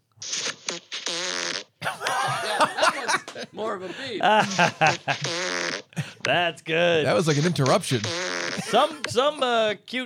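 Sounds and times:
farts: 0.2s - 1.8s, 5.1s - 5.9s, 7.3s - 8.8s
laughter: 1.8s - 6.3s, 8.6s - 9.5s
speech: 3.6s - 5.5s, 6.3s - 10.0s.

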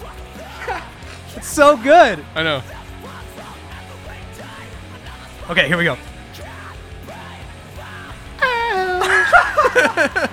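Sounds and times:
faint backing music: 0.0s - 10.3s
laughter: 0.4s - 1.3s, 8.4s - 10.3s
speech: 0.7s - 2.8s, 5.5s - 6.1s, 9.7s - 10.3s
screamed vocal in a song: 8.3s - 9.6s.

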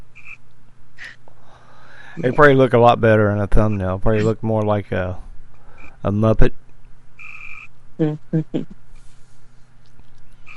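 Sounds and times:
faint hum: 0.0s - 10.5s
high-pitched tone: 2.2s - 3.0s, 3.6s - 4.8s
speech: 2.2s - 5.2s, 6.0s - 6.6s, 8.0s - 8.8s
frog croaking: 7.2s - 7.7s.

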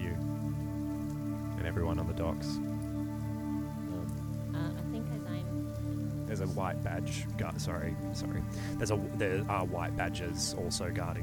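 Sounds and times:
soft steady rain falling at a dockside: 0.0s - 11.2s
speech: 1.6s - 2.7s, 6.4s - 11.2s
low tonal drone: 2.7s - 11.2s.

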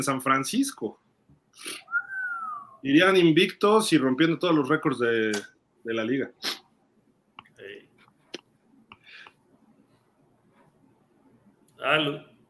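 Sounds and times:
speech: 0.0s - 1.9s, 2.8s - 6.6s, 11.8s - 12.3s
short sharp puff: 6.4s - 6.7s
sneeze: 6.4s - 6.7s.

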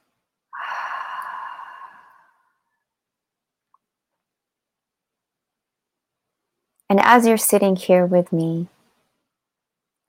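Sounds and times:
deep exhale during a guided meditation: 0.5s - 2.7s
speech: 6.9s - 8.8s.

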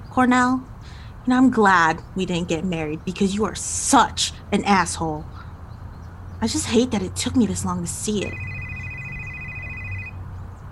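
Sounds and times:
speech: 0.2s - 5.4s, 6.4s - 8.5s
telephone ringing with a high electronic tone: 8.3s - 10.2s.

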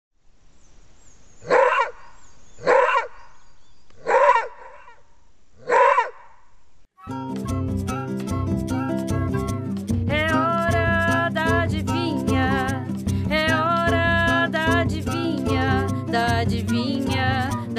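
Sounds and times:
maned wolf barking: 1.4s - 3.4s, 4.0s - 5.0s, 5.6s - 6.4s
music: 7.0s - 17.7s.

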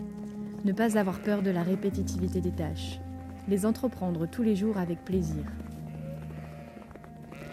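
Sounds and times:
speech: 0.6s - 5.7s
flock of sheep bleating while led up a hill to graze: 0.9s - 2.3s, 5.7s - 7.5s.

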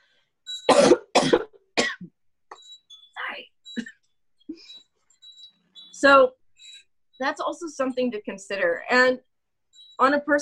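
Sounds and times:
person coughing harshly: 0.7s - 2.2s
speech: 6.0s - 6.4s, 7.2s - 9.3s, 10.0s - 10.4s.

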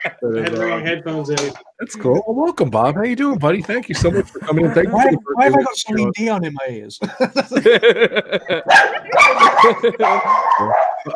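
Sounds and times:
laughter: 0.0s - 1.0s, 3.2s - 11.1s
speech: 0.2s - 11.1s
several dogs barking: 8.6s - 11.1s.

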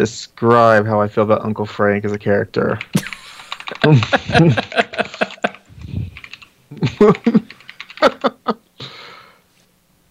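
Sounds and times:
speech: 0.0s - 3.1s, 3.8s - 4.8s, 7.0s - 8.2s
typing on a computer keyboard: 2.8s - 4.2s, 5.1s - 8.4s
laughter: 3.0s - 6.1s, 6.7s - 8.6s.

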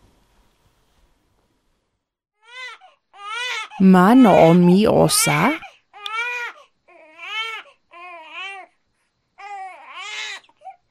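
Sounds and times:
newborn baby crying: 2.4s - 5.2s, 5.9s - 8.7s, 9.4s - 10.9s
speech: 3.8s - 5.6s.

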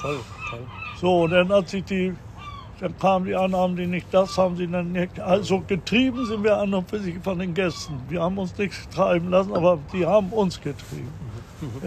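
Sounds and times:
hungry seagulls squawking: 0.0s - 10.7s
speech: 0.0s - 11.8s.

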